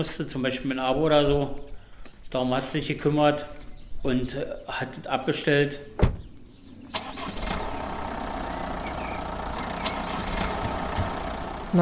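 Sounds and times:
speech: 0.0 - 6.1
car engine starting as caregivers drive off after a team meeting: 6.7 - 11.7.

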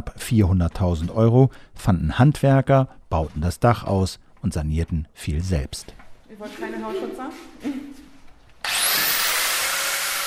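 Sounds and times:
speech: 0.0 - 8.0
power sander sanding a wooden kitchen island: 8.6 - 10.2.

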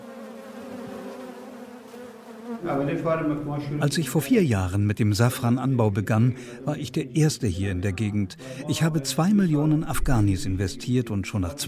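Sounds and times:
kept honeybees buzzing in a garden: 0.0 - 3.4
speech: 2.6 - 11.6.

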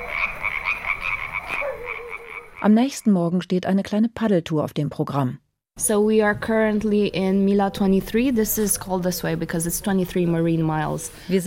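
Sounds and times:
toads croaking at night in the village of Mila 23: 0.0 - 2.7
speech: 2.6 - 11.4.

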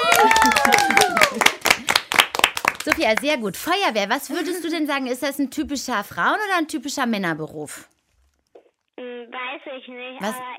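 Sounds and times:
people clapping during a children's job-guessing game: 0.0 - 3.4
speech: 3.0 - 8.0, 9.8 - 10.5.

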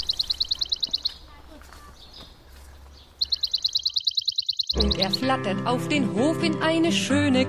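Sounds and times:
faint noise: 0.0 - 5.1
house sparrows chirping: 0.0 - 5.6
speech: 5.0 - 7.4.

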